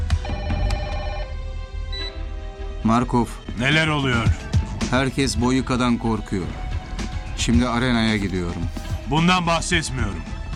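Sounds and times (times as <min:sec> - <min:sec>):
telephone ringing with a trilling electronic tone: 0:00.2 - 0:02.2
speech: 0:02.9 - 0:06.6, 0:07.4 - 0:10.3.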